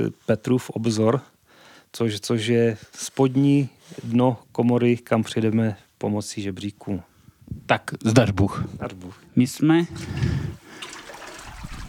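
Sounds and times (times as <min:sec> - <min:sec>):
speech: 0:00.0 - 0:10.4
people wading through water at the lowest part of a mine shaft: 0:09.9 - 0:11.8.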